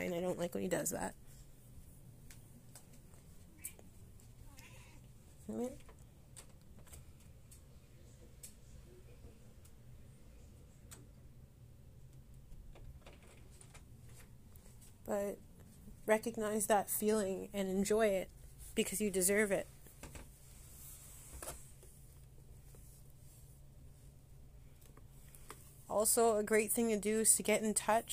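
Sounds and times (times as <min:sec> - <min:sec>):
speech: 0:00.0 - 0:01.2, 0:05.5 - 0:05.9, 0:15.1 - 0:19.7, 0:26.0 - 0:28.1
low hum: 0:00.0 - 0:28.1
cat meowing to be let out: 0:04.5 - 0:05.1.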